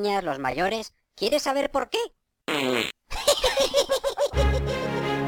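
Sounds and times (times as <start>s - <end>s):
speech: 0.0s - 2.9s
comic fart noises in a rap track: 2.5s - 3.1s
laughter: 3.2s - 5.1s.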